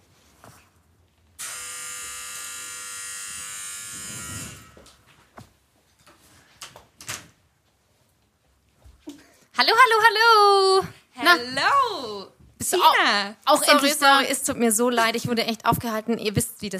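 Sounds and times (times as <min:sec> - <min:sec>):
loud steady electric doorbell buzz: 0:01.4 - 0:05.0
speech: 0:09.6 - 0:16.7.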